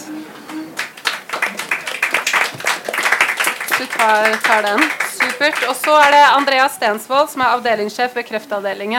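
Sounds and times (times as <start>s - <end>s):
faint murmur of voices: 0.0s - 8.9s
audience applause: 0.3s - 7.0s
speech: 3.8s - 8.9s.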